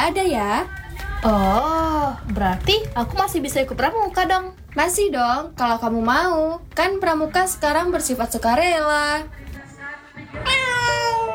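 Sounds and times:
speech: 0:00.0 - 0:09.6
domestic cat giving a drawn-out meow: 0:10.4 - 0:11.3.

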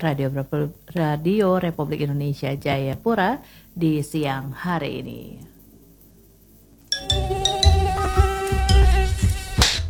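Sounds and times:
speech: 0:00.0 - 0:05.5
high-pitched mosquito whine: 0:07.0 - 0:09.6.

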